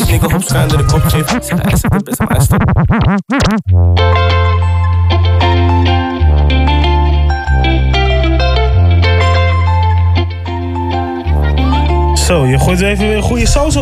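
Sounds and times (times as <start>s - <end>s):
swooping warbling effect: 0.0s - 3.6s
hip-hop beat with heavy distorted bassline and synth chords: 0.0s - 13.8s
speech: 0.1s - 4.8s, 12.3s - 13.8s.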